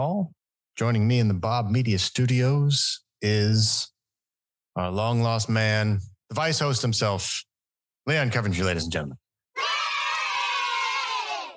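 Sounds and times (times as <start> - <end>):
speech: 0.0 - 3.9, 4.8 - 9.2
loud crowd cheering and screaming: 9.6 - 11.5.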